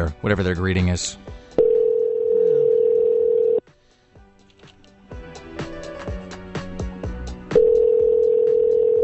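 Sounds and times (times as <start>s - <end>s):
speech: 0.0s - 1.4s
electronic ringback tone on a phone line: 1.6s - 3.6s, 7.6s - 9.0s.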